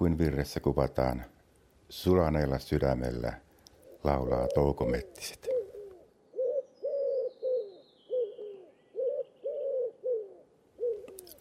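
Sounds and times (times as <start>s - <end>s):
speech: 0.0s - 3.4s, 4.0s - 5.6s
dove cooing in soft low hooting phrases: 3.8s - 11.3s.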